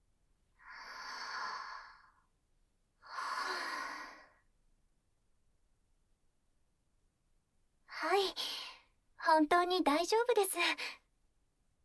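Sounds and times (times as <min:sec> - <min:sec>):
deep breaths taken to calm down: 0:00.6 - 0:02.3, 0:03.0 - 0:04.5
speech: 0:09.4 - 0:11.0.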